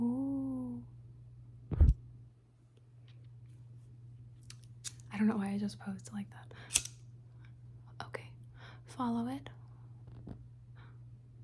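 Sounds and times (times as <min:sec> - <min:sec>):
quiet low hum: 0:00.0 - 0:11.4
speech: 0:05.2 - 0:06.9, 0:09.0 - 0:09.6
lighter click: 0:06.7 - 0:07.0.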